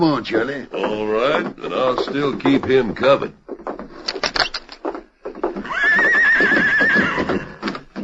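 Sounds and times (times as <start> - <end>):
speech: 0.0 - 3.4
short knocking and shuffling: 0.0 - 8.0
horse neighing: 5.4 - 7.9.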